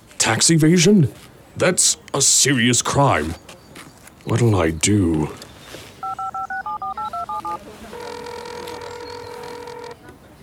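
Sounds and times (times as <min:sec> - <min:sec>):
speech: 0:00.3 - 0:03.6, 0:04.2 - 0:05.4
touch-tone beeps of a phone number being dialed: 0:06.0 - 0:10.0.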